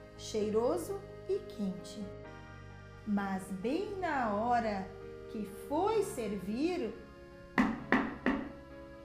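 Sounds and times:
speech: 0:00.3 - 0:02.3, 0:03.1 - 0:07.0
firm knocks on a bedroom door: 0:07.6 - 0:08.6.

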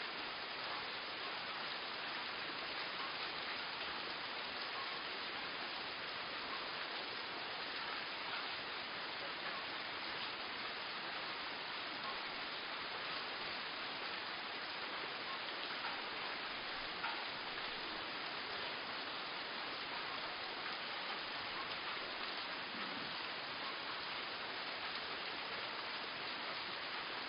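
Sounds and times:
rain in the rain forests of Costa Rica: 0:00.0 - 0:27.2.

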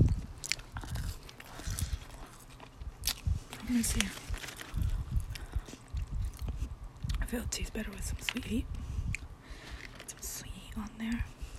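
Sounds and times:
crunchy fries being bitten and chewed: 0:00.0 - 0:07.3, 0:08.2 - 0:10.2
speech: 0:03.7 - 0:04.2, 0:07.3 - 0:08.8, 0:10.8 - 0:11.3.

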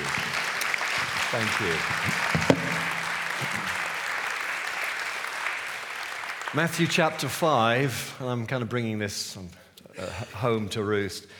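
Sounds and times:
audience applause: 0:00.0 - 0:07.4
speech: 0:01.3 - 0:02.6, 0:06.6 - 0:11.3.

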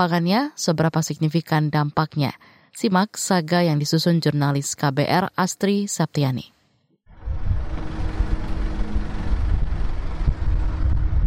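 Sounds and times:
speech: 0:00.0 - 0:06.6
wind noise on microphone: 0:07.1 - 0:11.2
garbage truck engines rumbling at a waste power plant: 0:07.2 - 0:11.2.

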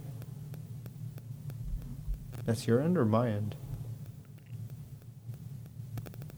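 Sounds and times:
faint crackly static ticks: 0:00.0 - 0:06.3
steady low electrical hum on the audio line: 0:00.0 - 0:06.3
speech: 0:02.4 - 0:03.6.

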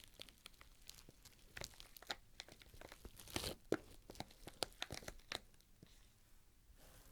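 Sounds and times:
plastic or paper being pulled and crumpled: 0:00.0 - 0:05.6
crisp clicks: 0:00.0 - 0:05.7
microphone packaging crinkling, snapping and tearing during unboxing: 0:00.0 - 0:05.7.

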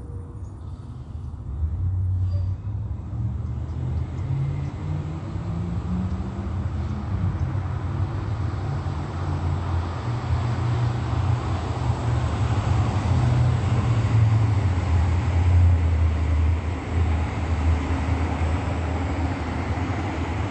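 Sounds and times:
airplane passing overhead: 0:00.0 - 0:20.4.

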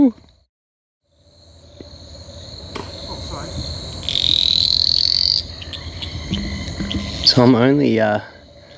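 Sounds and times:
speech: 0:00.0 - 0:00.2, 0:07.4 - 0:08.4
shrill chorus of frogs and insects at night: 0:01.0 - 0:08.7
Litoria fallax small green male tree frog buzzing call at night: 0:01.1 - 0:08.0
soft frog croaks: 0:04.0 - 0:07.5.

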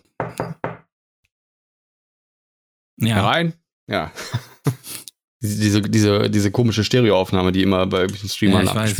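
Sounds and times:
solid knuckle knocks on a wooden door: 0:00.2 - 0:00.9
speech: 0:03.0 - 0:04.4, 0:05.4 - 0:08.9
laughter: 0:04.2 - 0:04.9.

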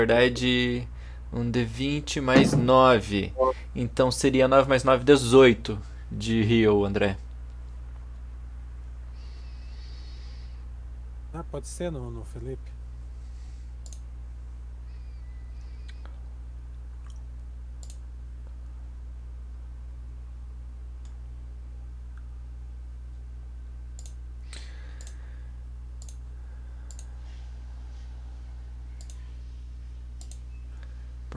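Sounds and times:
speech: 0:00.0 - 0:07.2, 0:11.5 - 0:12.8
steady low hum: 0:07.2 - 0:31.3
computer mouse clicking on a game character during a tabletop role-playing session: 0:13.8 - 0:14.0, 0:17.8 - 0:18.0, 0:24.0 - 0:24.2, 0:26.0 - 0:26.2, 0:26.9 - 0:27.1, 0:29.0 - 0:29.3, 0:30.2 - 0:30.5.

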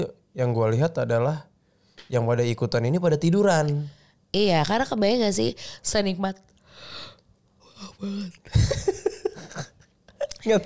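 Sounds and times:
speech: 0:00.0 - 0:07.1, 0:07.8 - 0:09.0, 0:10.4 - 0:10.6
person yawning: 0:07.6 - 0:08.4
laughter: 0:08.5 - 0:09.8.

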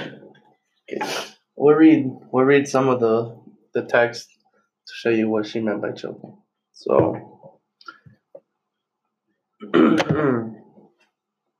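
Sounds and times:
speech: 0:00.9 - 0:04.3, 0:04.9 - 0:07.4, 0:09.7 - 0:10.5
person clearing throat: 0:09.6 - 0:10.6.

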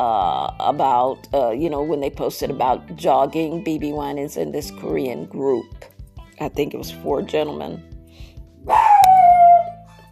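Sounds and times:
speech: 0:00.0 - 0:08.8
dog howl-like barking: 0:08.7 - 0:09.8.

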